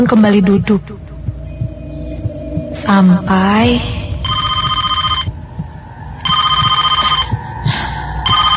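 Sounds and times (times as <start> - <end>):
speech: 0.0 - 1.1, 2.7 - 4.0
low rumble: 0.0 - 8.5
reception desk telephone ringing: 4.3 - 5.3, 6.3 - 7.2, 8.3 - 8.5.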